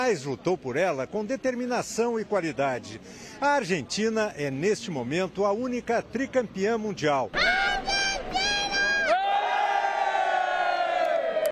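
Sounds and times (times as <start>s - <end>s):
speech: 0.0s - 7.9s
large crowd cheering and chanting in unison: 7.4s - 11.5s.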